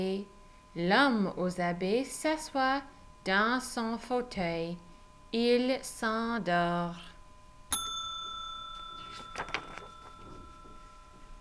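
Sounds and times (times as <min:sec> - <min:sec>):
speech: 0:00.0 - 0:07.1
telephone ringing with a bright bell strike: 0:07.7 - 0:11.3
faint soft clicks and rustles: 0:09.0 - 0:11.3.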